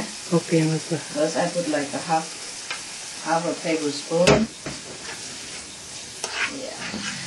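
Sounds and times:
food frying in a pan with soy sauce or Maggi: 0.0 - 7.2
speech: 0.3 - 2.4, 3.2 - 4.6
stirring scrapes in a frying pan: 4.7 - 7.2.

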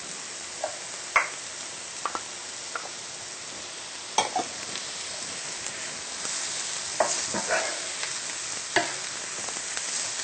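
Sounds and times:
leeks sizzling in a frying pan: 0.0 - 10.2
stirring scrapes in a frying pan: 7.0 - 7.9.

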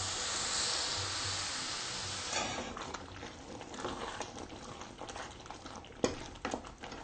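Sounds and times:
salted sauce simmering: 0.0 - 7.0
stirring a salted sauce as it cooks: 2.3 - 7.0.

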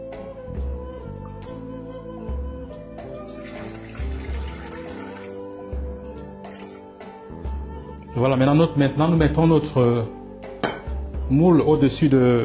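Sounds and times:
water pouring into a cooking pot under a steaming platform: 3.2 - 5.4
speech: 8.2 - 10.2, 11.3 - 12.4.

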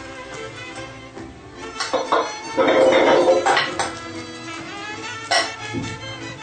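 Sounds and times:
metal cooking pot of potatoes in water set down on a stove: 1.7 - 4.0, 5.3 - 5.6
pot scraping on a stove: 1.7 - 4.6, 5.2 - 5.6.

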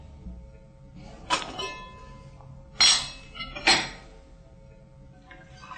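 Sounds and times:
metallic utensils clinking against a pot of hot water: 1.3 - 2.2, 2.8 - 4.0.

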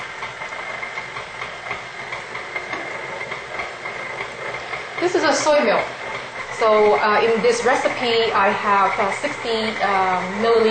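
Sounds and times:
blender motor whirring at low speed: 0.0 - 10.6
speech: 5.0 - 6.0, 6.6 - 10.6.

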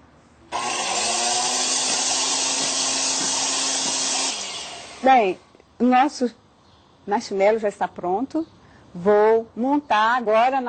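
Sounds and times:
electric mixer beating a mixture at high speed: 0.5 - 5.0
speech: 5.0 - 6.4, 7.1 - 10.6.

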